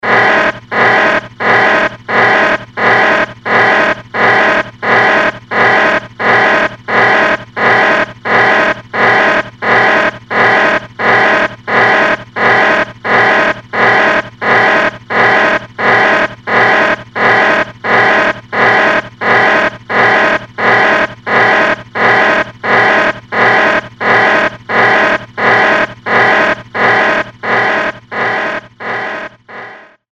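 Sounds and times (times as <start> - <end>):
buzzing alarm: 0.0 - 30.1.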